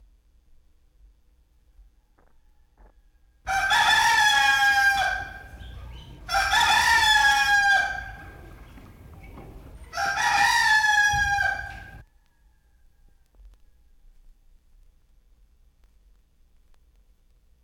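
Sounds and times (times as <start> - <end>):
rooster crowing: 1.8 - 5.6, 6.2 - 8.5, 9.8 - 14.0.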